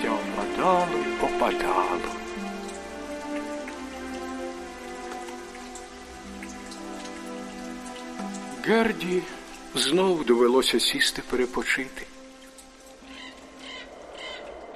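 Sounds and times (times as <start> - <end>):
fog droplets dripping onto yellowed willow leaves in cold damp autumn weather: 0.0 - 14.7
speech: 0.6 - 2.2, 8.7 - 12.1
raven cawing: 13.0 - 14.7.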